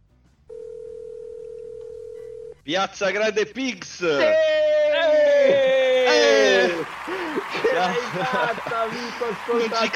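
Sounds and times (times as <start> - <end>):
telephone ringing tone on a call line: 0.5 - 2.6
speech: 2.6 - 4.6, 7.8 - 9.9
laughter: 4.2 - 9.9.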